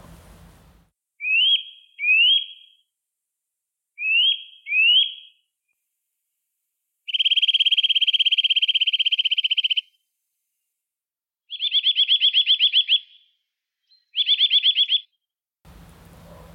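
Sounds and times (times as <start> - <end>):
Eurasian nuthatch calls: 1.2 - 2.8, 4.0 - 5.4, 7.1 - 10.0, 11.5 - 13.3, 13.9 - 15.1
Eurasian nuthatch ringing trill: 1.2 - 2.8, 4.0 - 5.4, 7.1 - 9.9, 11.5 - 15.2.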